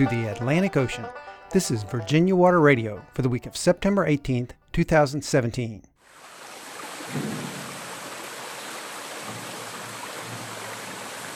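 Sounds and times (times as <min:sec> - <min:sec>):
speech: 0:00.0 - 0:05.9, 0:07.1 - 0:07.6
Potts Creek flowing in Paint Bank, Craig County, Virginia: 0:06.0 - 0:11.3.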